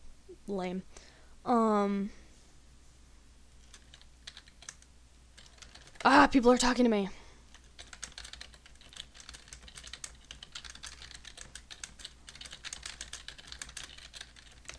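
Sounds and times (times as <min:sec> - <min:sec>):
speech: 0:00.5 - 0:02.2, 0:06.0 - 0:07.2
typing on a computer keyboard: 0:03.6 - 0:06.1, 0:07.5 - 0:14.7.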